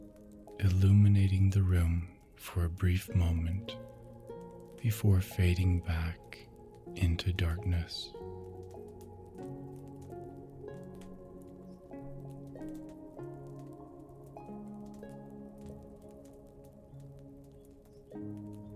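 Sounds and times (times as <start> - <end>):
steady rain pattering: 0.0 - 18.7
speech: 0.7 - 3.9, 4.8 - 8.2.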